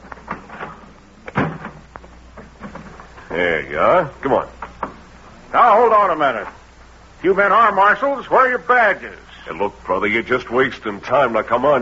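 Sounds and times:
door thump and rattle: 0:00.3 - 0:01.8
speech: 0:03.3 - 0:04.6, 0:05.5 - 0:06.6, 0:07.2 - 0:11.8.

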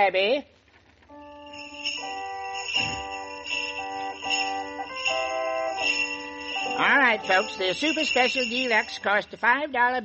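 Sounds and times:
speech: 0:00.0 - 0:00.6, 0:06.8 - 0:10.0
slow organ melody with sustained chords: 0:01.1 - 0:09.0
hand bells shaken by a woman: 0:01.4 - 0:09.5.

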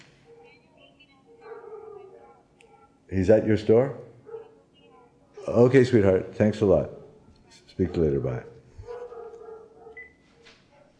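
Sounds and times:
neighbor's dog yelping: 0:01.3 - 0:02.9, 0:04.2 - 0:04.6, 0:07.8 - 0:10.1
neighbor's dogs barking and whining: 0:01.3 - 0:03.0, 0:04.1 - 0:05.9, 0:07.8 - 0:10.2
speech: 0:03.1 - 0:04.1, 0:05.5 - 0:07.0, 0:07.8 - 0:08.5.

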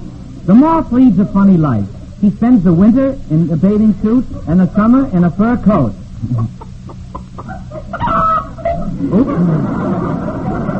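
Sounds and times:
speech: 0:00.5 - 0:06.6, 0:09.0 - 0:10.3
hen clucking after laying an egg: 0:06.2 - 0:09.0
hen cackling after laying an egg: 0:06.3 - 0:09.3.

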